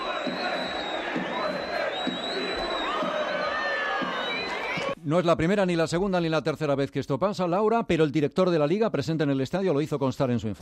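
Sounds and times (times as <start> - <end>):
large crowd of football fans in stadium stands chanting and shouting insults: 0.0 - 5.0
piercing whistles from stadium crowd: 0.0 - 5.0
speech: 5.0 - 10.6.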